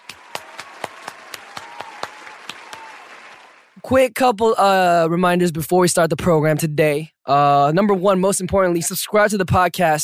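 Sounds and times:
crisp evenly spaced handclaps: 0.0 - 3.8
soft wash of crowd clapping: 0.0 - 3.9
speech: 3.8 - 10.0.

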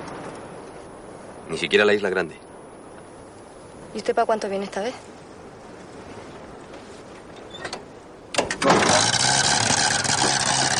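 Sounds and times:
speech: 1.5 - 2.5, 3.9 - 5.1
car engine starting: 8.4 - 10.7.

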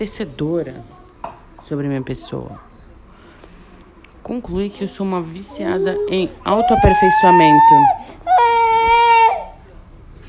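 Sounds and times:
speech: 0.0 - 1.0, 1.7 - 2.7, 4.2 - 8.4
baby crying: 5.6 - 9.6.

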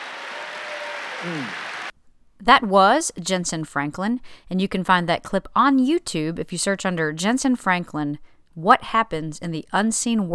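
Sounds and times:
audience applause: 0.0 - 1.9
speech: 1.2 - 1.6, 2.4 - 10.3.

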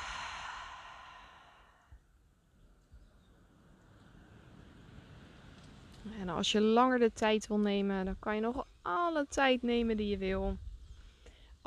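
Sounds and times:
deep breath during a guided relaxation exercise: 0.0 - 2.0, 11.0 - 11.6
low hiss: 0.0 - 11.6
speech: 6.0 - 10.6.

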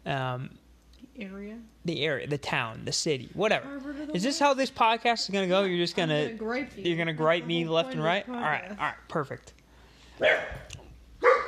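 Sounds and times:
speech: 0.1 - 9.6, 10.2 - 10.8
dog barking: 10.2 - 11.4.

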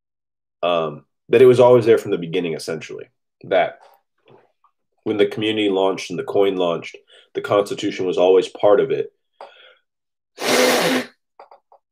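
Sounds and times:
speech: 0.6 - 3.9, 5.0 - 9.5
short faint sniffs: 10.4 - 11.1
loud breathy honking nose blow: 10.4 - 11.3.

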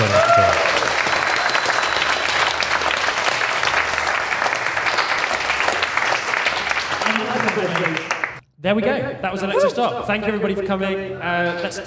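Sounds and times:
large audience applauding a guest at a live event: 0.0 - 8.4
speech: 8.7 - 11.8.

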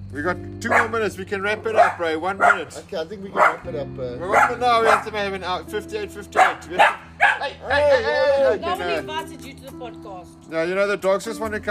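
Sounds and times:
speech: 0.1 - 11.6
dogs barking: 0.6 - 5.3, 6.3 - 7.8
dog yelp: 0.7 - 1.0, 1.7 - 2.8, 3.4 - 5.2, 6.4 - 7.8.

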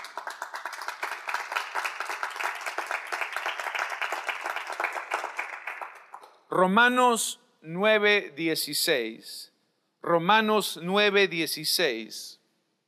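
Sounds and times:
crowd applauding: 0.0 - 6.2
speech: 6.5 - 12.4.

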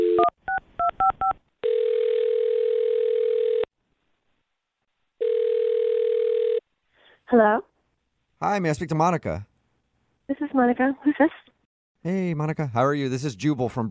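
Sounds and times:
telephone ringback tones: 0.0 - 3.7, 5.2 - 6.6
speech: 8.4 - 9.5, 10.6 - 13.8.

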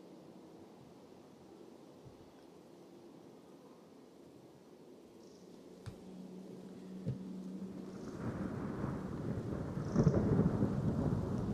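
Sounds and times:
rain falling as a storm builds: 7.0 - 11.5.

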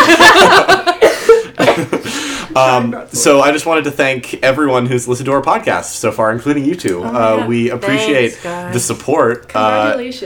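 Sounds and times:
laughter: 0.0 - 2.9
person coughing: 1.0 - 2.1
speech: 2.6 - 10.2.

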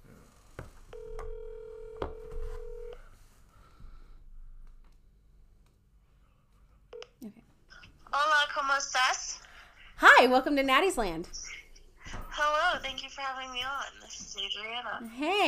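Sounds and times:
steady electronic phone dial tone: 0.9 - 3.0
speech: 8.4 - 9.4, 10.2 - 11.4, 13.2 - 15.4.

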